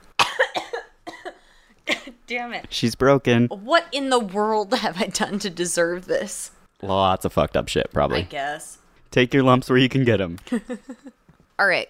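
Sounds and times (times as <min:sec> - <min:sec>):
fit of harsh coughing: 0:00.2 - 0:02.1
speech: 0:02.3 - 0:11.8.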